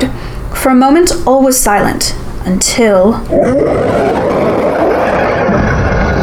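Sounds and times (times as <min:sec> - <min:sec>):
speech: 0:00.7 - 0:04.2
deep thunderous monster roar: 0:03.3 - 0:06.2.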